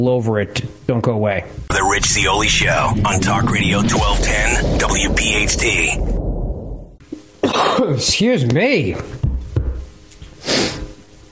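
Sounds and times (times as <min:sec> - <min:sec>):
speech: 0:00.0 - 0:06.3, 0:07.8 - 0:09.2
soft low thumps: 0:04.0 - 0:07.0
harsh cough: 0:07.4 - 0:08.0.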